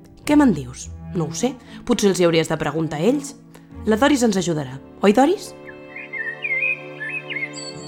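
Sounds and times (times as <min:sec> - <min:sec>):
speech: 0:00.3 - 0:05.6
blackbird singing a fluting warbling phrase: 0:05.4 - 0:07.8.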